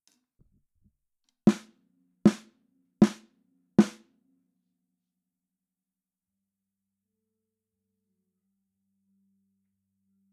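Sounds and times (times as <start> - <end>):
drums: 1.5 - 1.7, 3.0 - 3.2, 3.8 - 4.0
snare drum recorded with a microphone: 1.5 - 1.7, 2.3 - 3.2, 3.8 - 4.0.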